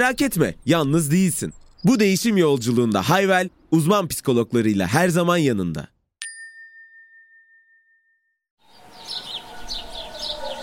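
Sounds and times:
birds chirping: 0.0s - 5.0s, 8.6s - 10.6s
speech: 0.0s - 5.9s
single chime ringing: 6.2s - 8.4s.

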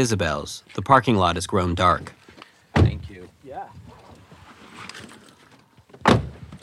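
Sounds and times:
speech: 0.0s - 2.2s
heavy car door thudding shut: 2.8s - 3.1s, 6.0s - 6.6s.

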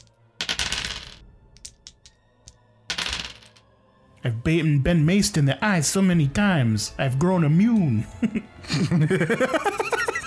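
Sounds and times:
dice rattling across a hard tabletop: 0.0s - 3.6s
speech: 4.2s - 10.1s
laughter: 8.2s - 10.2s.

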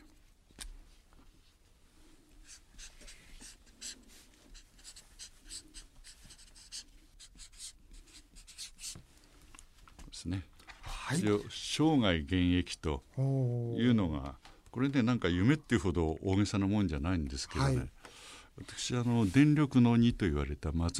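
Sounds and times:
pen scratching across a shikishi board: 2.4s - 9.0s
speech: 10.3s - 10.5s, 11.1s - 18.0s, 18.6s - 20.9s.

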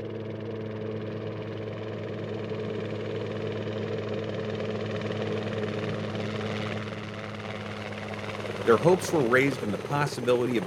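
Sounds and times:
helicopter rotor and engine droning: 0.0s - 10.6s
speech: 8.7s - 10.6s.

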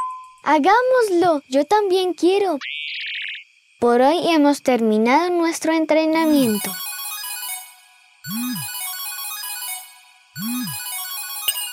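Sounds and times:
speech: 0.5s - 2.8s, 3.8s - 6.8s
bright electronic voice message notification ringtone: 6.2s - 11.7s.

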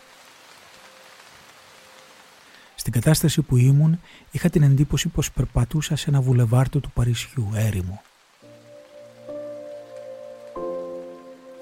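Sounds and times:
steady rain pattering on a hard surface: 0.0s - 11.6s
speech: 2.8s - 8.1s.

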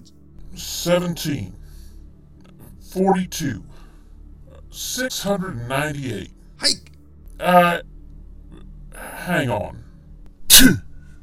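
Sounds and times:
speech: 0.0s - 1.6s, 2.9s - 3.8s, 4.8s - 7.9s, 9.3s - 9.8s, 10.6s - 10.9s
person sneezing: 6.6s - 6.8s.

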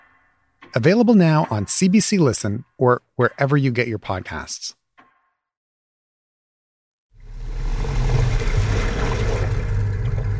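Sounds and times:
speech: 0.7s - 4.8s
boat outboard motor running near Barclay Sound, Vancouver Island: 7.2s - 10.3s.

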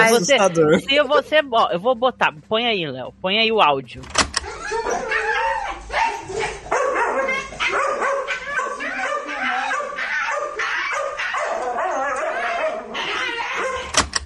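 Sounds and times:
laughter: 0.0s - 1.1s, 4.4s - 6.8s
speech: 0.1s - 5.2s
female dog screaming and shrieking: 4.4s - 14.0s.

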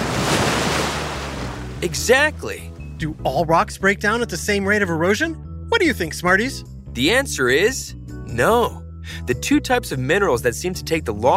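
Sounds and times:
ocean surf waves pounding: 0.0s - 1.8s
speech: 1.8s - 11.3s.

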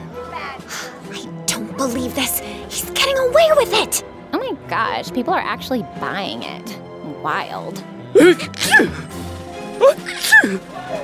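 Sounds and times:
speech: 1.8s - 9.2s, 9.8s - 11.0s
mummy sneezing theatrically: 8.2s - 9.1s, 9.8s - 10.6s.

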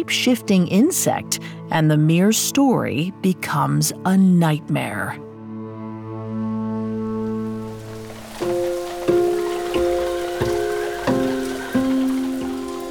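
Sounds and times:
speech: 0.0s - 5.3s
music with low sustained tones and ringing struck notes: 5.3s - 12.8s
steady hiss of falling rain: 7.0s - 12.8s.

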